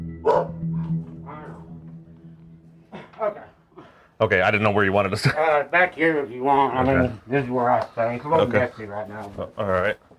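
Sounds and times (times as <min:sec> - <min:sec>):
steady low hum: 0:00.0 - 0:03.8
caged bulldog barking: 0:00.2 - 0:00.7
speech: 0:04.2 - 0:10.1.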